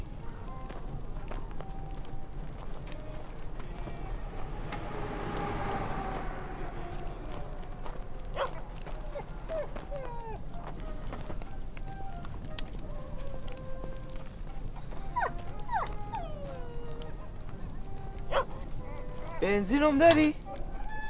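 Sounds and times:
steady noise: 0:00.0 - 0:20.8
faint outdoor animal sounds: 0:00.0 - 0:21.0
dog barking: 0:08.3 - 0:08.6, 0:18.3 - 0:18.6
speech: 0:19.4 - 0:20.4.

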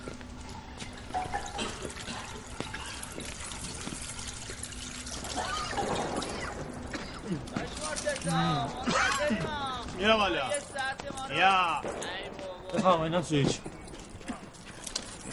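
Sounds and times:
water pouring: 0:00.0 - 0:09.3
speech: 0:10.0 - 0:10.7, 0:11.3 - 0:12.1, 0:12.7 - 0:13.7.

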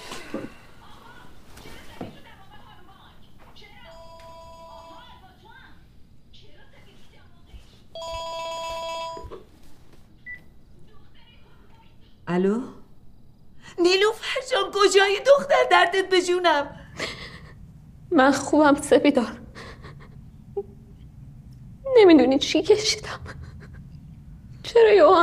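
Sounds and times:
telephone ringing with electronic tones: 0:03.9 - 0:05.1, 0:08.0 - 0:09.5
speech: 0:12.4 - 0:12.8, 0:14.8 - 0:16.8, 0:18.2 - 0:19.4, 0:22.1 - 0:23.2, 0:24.8 - 0:25.2.

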